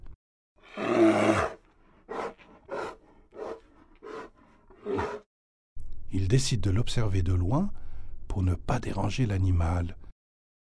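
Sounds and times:
grizzly bear roaring and growling: 0.6s - 5.3s
speech: 6.3s - 7.8s, 8.4s - 10.0s.

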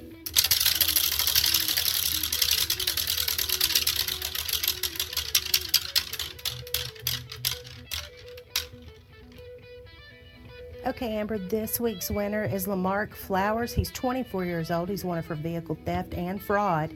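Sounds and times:
prize wheel pointer ticking against pegs: 0.2s - 8.9s
speech: 10.9s - 16.9s.

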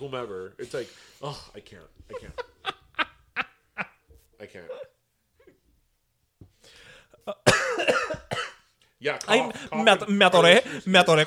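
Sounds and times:
speech: 0.0s - 2.5s, 4.4s - 4.9s, 9.0s - 11.2s
laughter: 2.0s - 4.0s
person coughing after choking on saliva: 7.3s - 8.6s.

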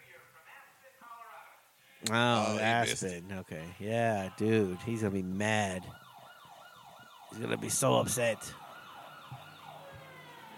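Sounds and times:
speech: 2.0s - 6.0s, 7.4s - 8.6s
police car siren blaring with rising and falling wails: 3.9s - 10.5s.

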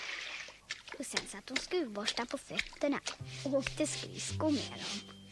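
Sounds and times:
water poured out splashing across a whole floor: 0.1s - 3.5s
speech: 1.0s - 5.1s.

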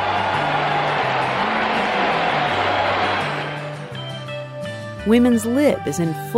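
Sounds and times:
big crowd roaring and cheering at a horse race: 0.0s - 4.5s
speech: 5.0s - 6.3s.

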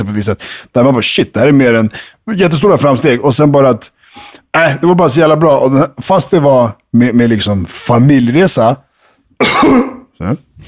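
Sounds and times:
speech: 0.0s - 10.6s
person coughing into the hand: 9.4s - 10.2s.

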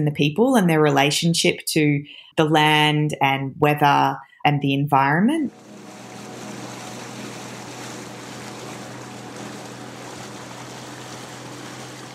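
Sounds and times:
speech: 0.0s - 5.9s
banana boat motor dinghy engine humming across open ocean in Papua New Guinea: 5.5s - 12.1s
ocean waves splashing: 5.5s - 12.1s.

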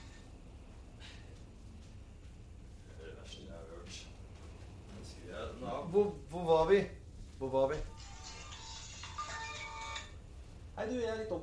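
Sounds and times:
speech: 5.6s - 7.9s, 10.8s - 11.4s
melodic phone ringtone: 7.9s - 10.1s.

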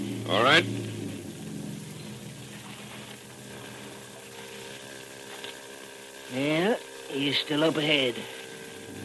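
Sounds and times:
motorboat engine drone in a foggy channel: 0.0s - 9.0s
speech: 0.3s - 0.9s, 7.2s - 8.4s.

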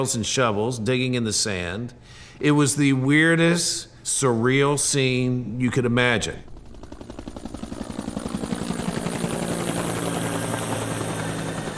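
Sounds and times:
speech: 0.0s - 6.5s
helicopter rotor beating overhead: 4.8s - 11.7s.

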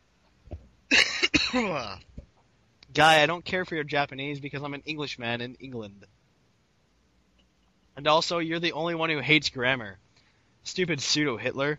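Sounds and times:
loud rough person coughing: 0.9s - 2.0s
speech: 1.5s - 2.1s, 2.9s - 6.2s, 8.0s - 10.0s, 10.6s - 11.7s.

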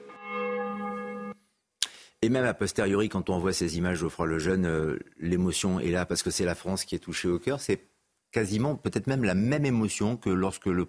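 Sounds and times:
deep church bell tolling at a funeral: 0.0s - 1.4s
speech: 2.2s - 10.8s.

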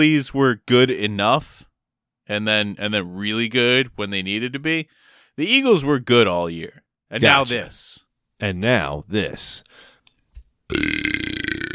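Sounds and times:
speech: 0.0s - 1.7s, 2.3s - 9.8s, 10.7s - 11.0s
loud deep croaky burp: 10.7s - 11.7s.

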